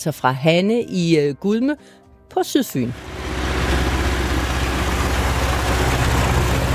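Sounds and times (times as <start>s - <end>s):
speech: 0.0s - 3.2s
tractor engine rumbling: 3.0s - 6.7s.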